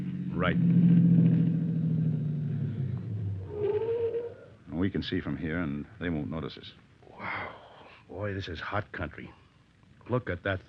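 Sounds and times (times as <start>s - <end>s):
car engine idling and driving behind a store: 0.0s - 3.6s
speech: 0.4s - 1.5s, 4.8s - 7.3s, 8.1s - 9.4s, 10.1s - 10.6s.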